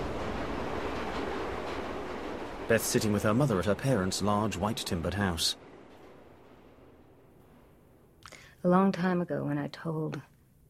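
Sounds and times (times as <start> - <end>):
train rumbling along railway tracks: 0.0 - 8.1
speech: 2.7 - 5.6, 8.6 - 10.3.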